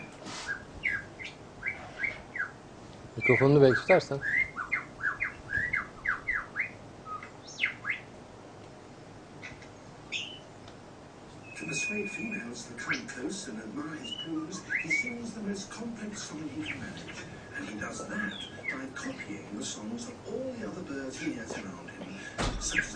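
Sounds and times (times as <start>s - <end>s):
bird mimicking other bird species' calls: 0.0s - 2.6s, 3.2s - 8.1s, 10.1s - 10.5s, 11.4s - 13.2s, 13.8s - 15.3s, 18.0s - 19.3s, 22.6s - 22.9s
people talking quietly: 3.0s - 4.4s, 11.4s - 22.9s
speech: 3.2s - 4.4s.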